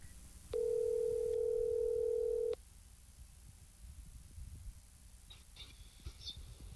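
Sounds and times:
low hiss: 0:00.0 - 0:06.7
steady electronic phone tone as a call is placed: 0:00.6 - 0:02.6.

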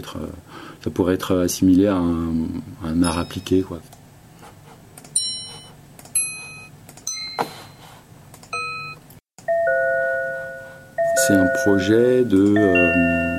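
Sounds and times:
speech: 0:00.0 - 0:04.0, 0:11.3 - 0:13.3
minute repeater watch chiming the time: 0:03.0 - 0:03.6, 0:05.2 - 0:07.7, 0:08.5 - 0:13.3.

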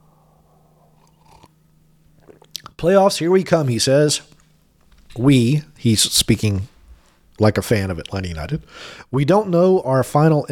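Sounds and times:
low steady electrical hum: 0:00.0 - 0:10.5
quiet sip of coffee: 0:00.4 - 0:01.5, 0:02.2 - 0:02.7
speech: 0:02.8 - 0:04.3, 0:05.2 - 0:06.7, 0:07.4 - 0:10.5.

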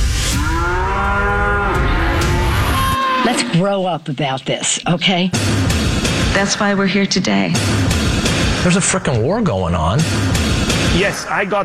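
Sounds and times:
cow mooing: 0:00.3 - 0:03.8
speech: 0:03.3 - 0:11.6.

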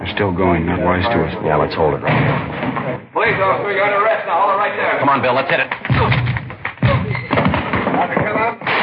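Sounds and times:
speech: 0:00.1 - 0:06.2
gunshots in a radio crime drama during a police arrest: 0:05.9 - 0:08.8.

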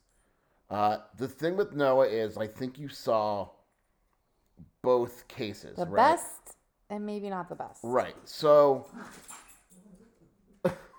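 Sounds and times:
speech: 0:00.7 - 0:03.6, 0:04.8 - 0:09.4, 0:10.6 - 0:10.8
dogs attacking each other at home, scuffling and whimpering: 0:08.8 - 0:10.5.

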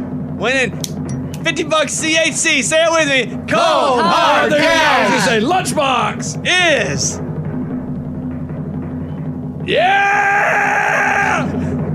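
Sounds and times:
low room rumble: 0:00.0 - 0:09.7
speech: 0:00.4 - 0:07.2, 0:09.7 - 0:11.2
excited scream: 0:03.5 - 0:05.5, 0:09.7 - 0:11.7.

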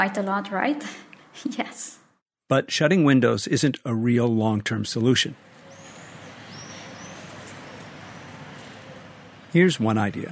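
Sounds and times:
speech: 0:00.0 - 0:05.5, 0:09.5 - 0:10.3
low hum of city noise: 0:02.9 - 0:10.3
thin high bird chirps: 0:05.5 - 0:09.6.

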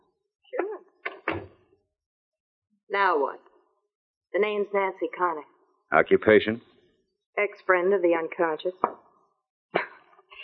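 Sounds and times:
door swinging shut with a creak-like rustle: 0:01.1 - 0:01.6
speech: 0:02.9 - 0:03.5, 0:04.3 - 0:06.7, 0:07.4 - 0:09.0.

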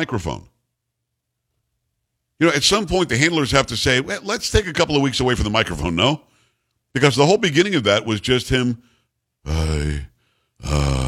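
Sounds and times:
speech: 0:00.0 - 0:00.5, 0:02.4 - 0:06.3, 0:06.9 - 0:11.0
man making snore-like grunts at a microphone: 0:09.5 - 0:11.0.

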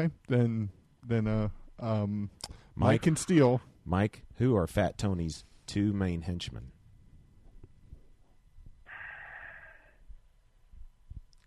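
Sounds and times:
speech: 0:00.0 - 0:06.7
audible breath: 0:08.9 - 0:10.1.

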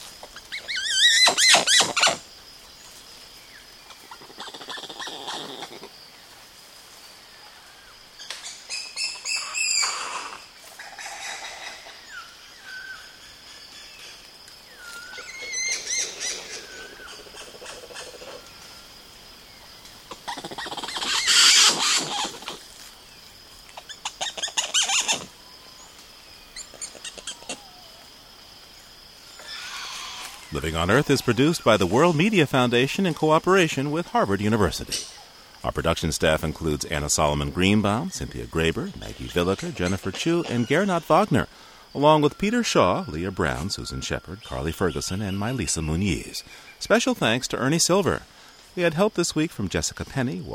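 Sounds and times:
woolly spider monkey troop shrill chirping and neighing calls: 0:00.2 - 0:02.3, 0:03.8 - 0:05.9, 0:08.3 - 0:13.6, 0:14.7 - 0:18.5, 0:20.0 - 0:22.8, 0:23.7 - 0:28.2, 0:29.2 - 0:32.3, 0:38.8 - 0:46.8
speech: 0:30.6 - 0:35.1, 0:35.7 - 0:50.5.

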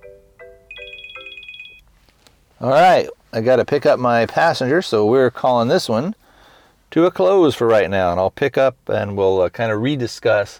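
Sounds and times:
phone ringtone with electronic tones and pulsing beeps: 0:00.0 - 0:01.8
speech: 0:02.6 - 0:06.2, 0:06.9 - 0:10.5.

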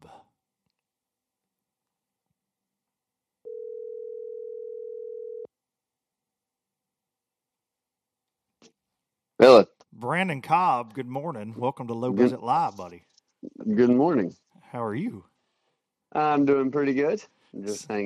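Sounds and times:
phone line ringing with electronic tone: 0:03.5 - 0:05.5
speech: 0:09.4 - 0:15.3, 0:16.1 - 0:18.0.

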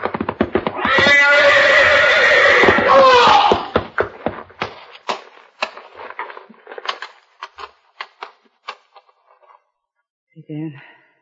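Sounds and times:
horse whinnying loudly in a stall: 0:00.0 - 0:04.0
horse hooves stamping on wood in a stall: 0:00.0 - 0:09.0.

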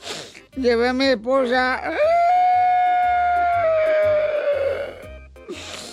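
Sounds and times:
speech: 0:00.6 - 0:02.1
man crying and wailing: 0:01.9 - 0:05.1.

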